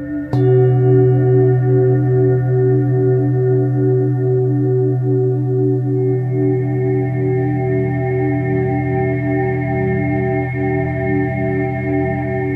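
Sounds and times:
singing bowl ringing with low and higher tones: 0.2 - 12.5
singing bowl strike: 0.3 - 11.2.

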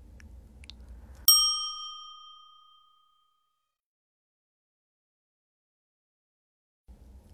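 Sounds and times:
single bright ding chime used as a game cue: 1.3 - 3.6.

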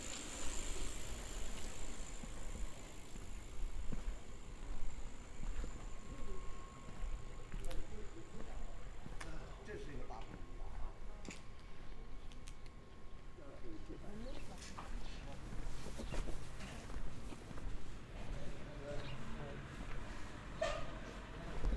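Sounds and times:
faint thin steady tone: 0.0 - 14.2
high quiet whine: 0.0 - 15.4
steady low rumble of traffic: 0.0 - 21.7.

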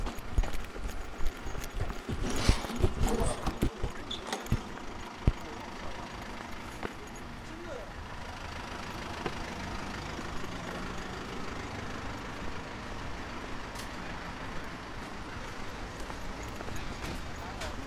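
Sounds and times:
sharp knocks and clatter: 0.0 - 5.4
vehicles passing on a university road: 0.0 - 17.8.

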